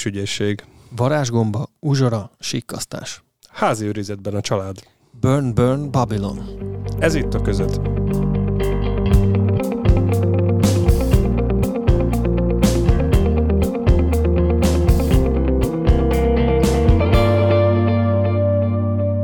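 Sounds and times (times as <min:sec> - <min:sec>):
speech: 0:00.0 - 0:08.4
effects-laden slightly distorted electric guitar in an instrumental intro tune: 0:05.7 - 0:19.2
steady drum hits: 0:09.2 - 0:17.4.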